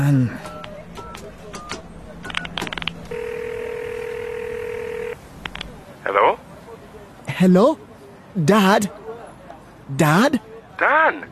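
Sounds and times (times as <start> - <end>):
speech: 0.0 - 0.5, 7.4 - 9.0, 9.9 - 11.2
faint noise: 0.0 - 11.2
public phone handset and keypad clicks and clunks: 0.4 - 3.2, 5.4 - 5.7
public phone dial tone: 3.1 - 5.2.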